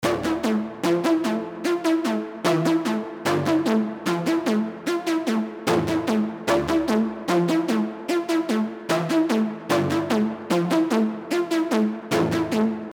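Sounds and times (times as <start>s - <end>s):
Serum synth lead: 0.0s - 12.9s.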